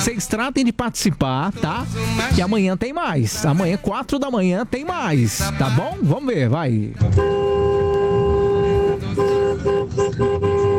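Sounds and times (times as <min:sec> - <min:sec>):
street noise: 0:00.0 - 0:10.7
speech: 0:00.1 - 0:07.7
car horn honking: 0:07.0 - 0:10.7.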